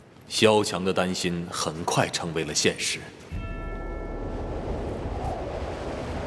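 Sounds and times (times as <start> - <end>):
speech: 0.3 - 3.3
howling blizzard wind: 2.8 - 6.2.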